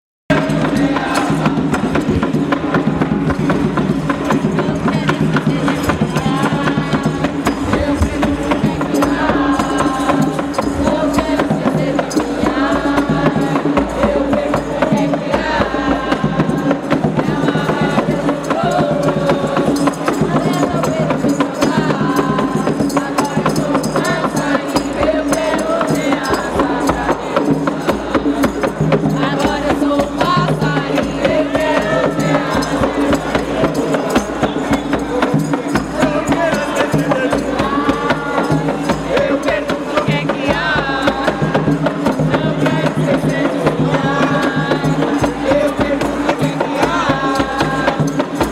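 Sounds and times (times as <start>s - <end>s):
batuque de umbigada drumming and singing in Piracicaba: 0.3s - 48.4s.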